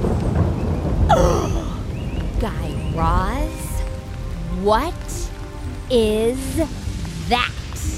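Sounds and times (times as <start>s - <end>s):
sudden sharp thunder crack with a descending whine: 0.0s - 5.6s
deep continuous rumble of thunder from the Relampago del Catatumbo lightning storm: 0.0s - 7.9s
speech: 4.6s - 5.2s, 5.9s - 7.6s.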